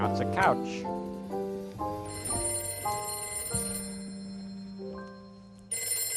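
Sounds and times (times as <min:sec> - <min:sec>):
speech: 0:00.1 - 0:00.9
telephone ringing with electronic tone: 0:02.0 - 0:06.1.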